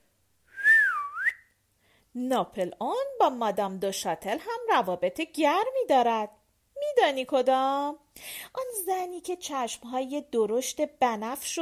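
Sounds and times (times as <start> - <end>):
human street-kid style wolf-whistle: 0.5 - 1.6
speech: 2.2 - 11.5.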